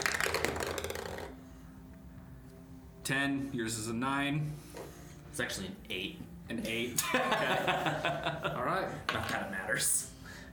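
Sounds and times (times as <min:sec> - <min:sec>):
dice clattering: 0:00.0 - 0:01.4
speech: 0:03.1 - 0:04.8, 0:05.4 - 0:10.1.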